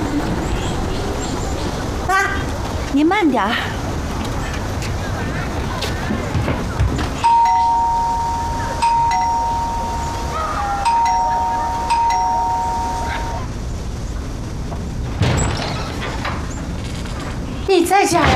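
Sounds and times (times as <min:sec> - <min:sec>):
low rumble: 0:00.0 - 0:18.3
speech: 0:03.0 - 0:03.8
loud sustained electronic doorbell tones: 0:07.2 - 0:13.5.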